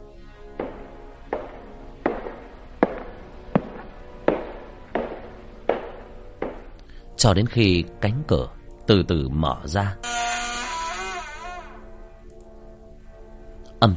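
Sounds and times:
footsteps outside at a slow walking pace: 0:00.6 - 0:06.8
speech: 0:07.2 - 0:10.2, 0:13.8 - 0:13.9.

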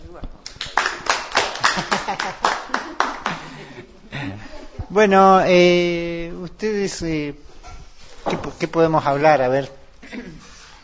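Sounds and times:
people applauding: 0:00.4 - 0:03.8
laughter: 0:01.4 - 0:04.9
speech: 0:02.1 - 0:02.9, 0:04.2 - 0:07.5, 0:08.3 - 0:10.4.

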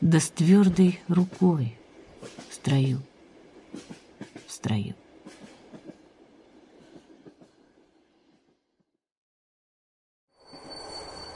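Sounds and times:
speech: 0:00.1 - 0:03.1, 0:04.5 - 0:05.0
train wagon clanking and jolting on the rails at a station: 0:00.6 - 0:03.0, 0:03.6 - 0:06.0.

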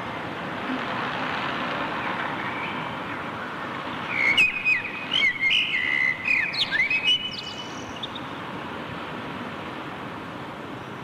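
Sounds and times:
steady background noise: 0:00.0 - 0:11.0
common blackbird singing in a backyard in Berlin: 0:04.1 - 0:08.3.

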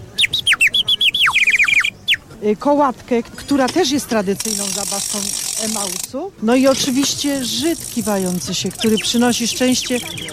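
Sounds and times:
traditional clay bird whistle toy chirping at an Easter Monday folk fair: 0:00.1 - 0:02.2, 0:08.7 - 0:10.3
speech: 0:02.4 - 0:10.3.

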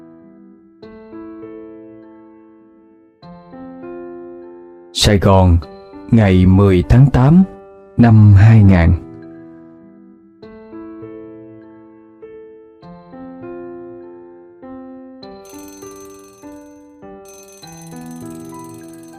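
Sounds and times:
speech: 0:05.0 - 0:09.0
wall-hung alarm clock chiming electronic notes: 0:15.4 - 0:19.1
bright harsh ringing bursts of a wall-hung alarm clock: 0:15.5 - 0:16.7, 0:17.3 - 0:19.1.

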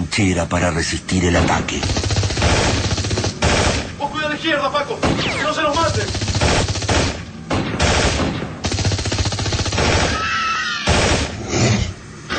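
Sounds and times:
speech: 0:00.2 - 0:02.6, 0:04.4 - 0:06.2
rifles shooting in battle: 0:01.8 - 0:04.0, 0:05.2 - 0:10.2, 0:10.9 - 0:11.4.

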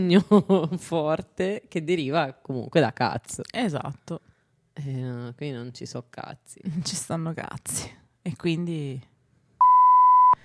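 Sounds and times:
speech: 0:00.0 - 0:09.1
censoring beep: 0:09.6 - 0:10.4.

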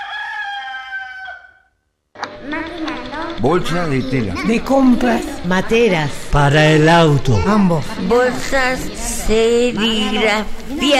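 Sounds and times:
fighting rooster crowing: 0:00.0 - 0:01.8
speech: 0:02.4 - 0:10.9.

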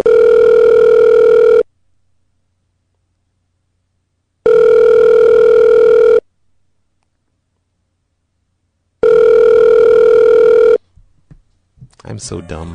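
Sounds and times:
telephone ringback tone in long buzzing bursts: 0:00.0 - 0:01.6, 0:04.4 - 0:06.2, 0:09.0 - 0:10.8
speech: 0:12.2 - 0:12.7.

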